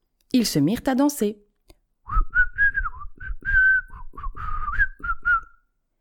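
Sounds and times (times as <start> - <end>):
speech: 0.4 - 1.4
person whistling a cheerful tune: 2.1 - 5.7.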